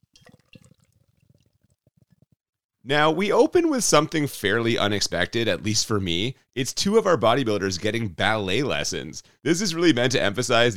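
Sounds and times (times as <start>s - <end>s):
beer pouring into a pint glass: 0.0s - 2.0s
speech: 2.8s - 10.7s.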